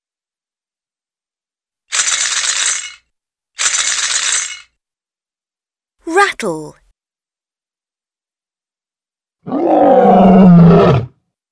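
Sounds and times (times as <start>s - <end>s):
speech: 6.1s - 6.8s
rough deep animal roar: 9.4s - 11.2s.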